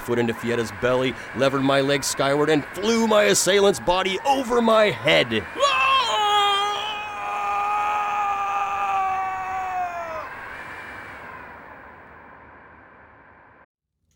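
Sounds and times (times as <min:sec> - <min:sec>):
speech: 0:00.0 - 0:05.8
man screaming while falling into a chasm: 0:05.5 - 0:10.4.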